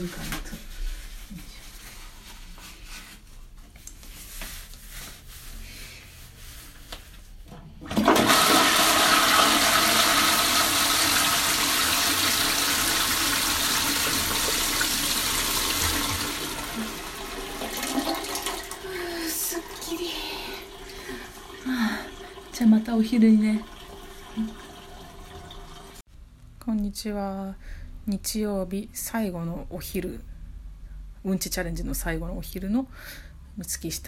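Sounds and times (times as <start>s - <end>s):
speech: 0.0s - 0.7s, 23.0s - 23.7s, 27.0s - 30.3s, 31.2s - 34.0s
toilet flushing at home: 7.7s - 26.0s
toilet cistern refilling with trickling water: 11.5s - 26.0s.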